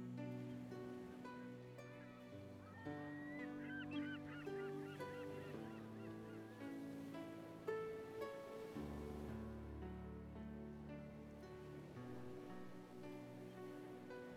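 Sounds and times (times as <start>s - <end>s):
soft wash of sea waves: 0.0s - 14.3s
flock of seagulls circling in the sky calling: 1.8s - 7.7s.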